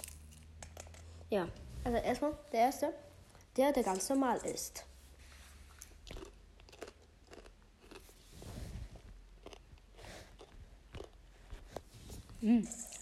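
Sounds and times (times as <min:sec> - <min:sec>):
person crunching popcorn while eating alone in a living room: 0:00.0 - 0:00.8, 0:05.8 - 0:08.2, 0:09.0 - 0:11.2
speech: 0:01.3 - 0:04.9, 0:12.4 - 0:12.8.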